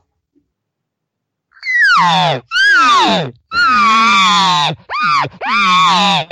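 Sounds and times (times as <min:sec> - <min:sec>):
cow elk nasal whiny demanding mews: 0:01.6 - 0:06.3.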